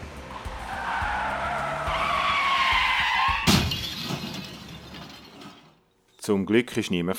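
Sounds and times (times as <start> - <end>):
car tires squealing in a long loud skid on a street: 0.4 - 3.6
crash of two cars colliding with shattering: 2.3 - 5.8
speech: 6.3 - 7.1.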